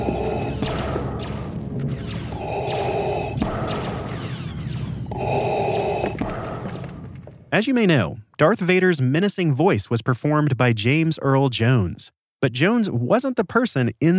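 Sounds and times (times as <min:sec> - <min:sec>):
breathing through a scuba tank regulator, pitched down: 0:00.0 - 0:01.3, 0:02.3 - 0:03.6, 0:05.1 - 0:06.2
speech: 0:07.5 - 0:14.1.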